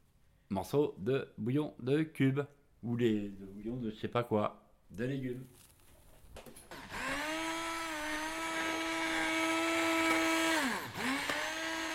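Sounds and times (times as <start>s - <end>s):
speech: 0.5s - 5.7s
blender pureeing zucchini for zucchini soup: 6.7s - 11.9s.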